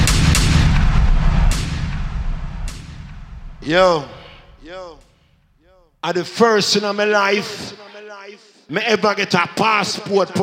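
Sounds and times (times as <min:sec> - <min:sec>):
gunshots: 0:00.0 - 0:05.1
speech: 0:03.7 - 0:05.0, 0:06.0 - 0:07.8, 0:08.7 - 0:10.4.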